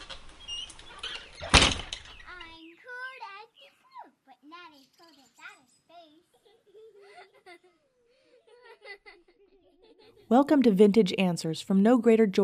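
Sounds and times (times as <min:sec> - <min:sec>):
door shutting with a loud thud: 0:00.0 - 0:02.5
young child babbling and giggling softly: 0:02.3 - 0:10.3
speech: 0:10.3 - 0:12.4.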